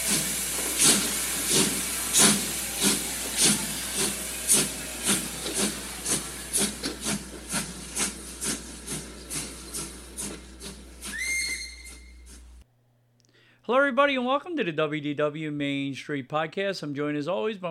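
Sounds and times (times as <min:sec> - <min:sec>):
steam train whistle blast: 0:00.0 - 0:07.7, 0:11.0 - 0:12.5
steam train hissing and chuffing as it pulls away: 0:00.0 - 0:12.6
speech: 0:13.7 - 0:17.6.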